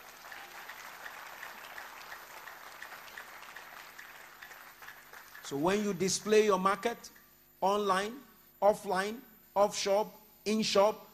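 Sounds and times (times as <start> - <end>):
audience applauding: 0.0 - 5.9
speech: 5.5 - 11.1.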